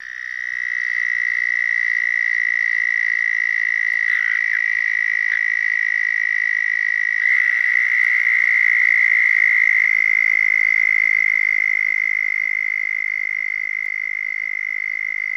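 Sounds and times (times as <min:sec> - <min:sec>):
southern toad trill call: 0:00.0 - 0:15.3.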